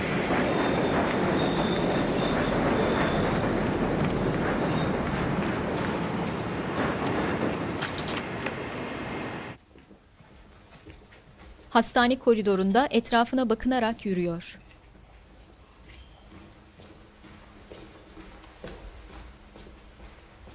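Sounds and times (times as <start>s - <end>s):
train rumbling at a railway station: 0.0s - 9.6s, 15.2s - 20.5s
speech: 11.8s - 14.6s.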